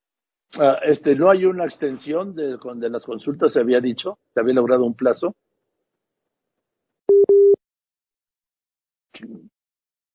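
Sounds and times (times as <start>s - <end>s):
speech: 0.6s - 5.4s
telephone busy-tone beeps after a dropped call: 7.1s - 7.6s.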